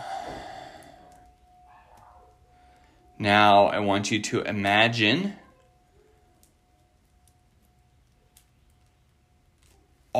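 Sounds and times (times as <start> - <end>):
slow deep breath in and out: 0.0 - 1.4
speech: 3.2 - 5.4.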